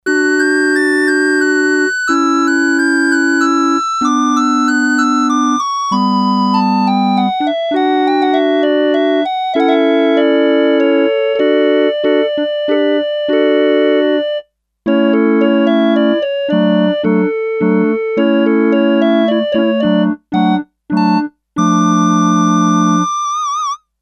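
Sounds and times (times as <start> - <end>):
high organ flutes on Sequential Circuits Six-Trak synthesizer: 0.1 - 23.8.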